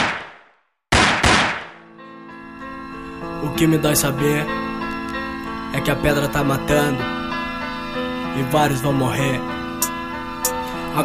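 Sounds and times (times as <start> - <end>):
loud sharp gunshots: 0.0 - 1.8
sustained musical tones: 1.8 - 11.0
speech: 3.5 - 4.6, 5.8 - 7.2, 8.4 - 9.6.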